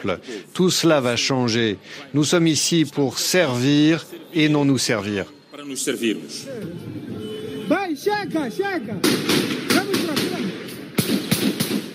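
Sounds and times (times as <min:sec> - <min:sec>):
speech: 0:00.0 - 0:07.0, 0:07.7 - 0:10.2
gunshots in a city centre: 0:09.0 - 0:11.9.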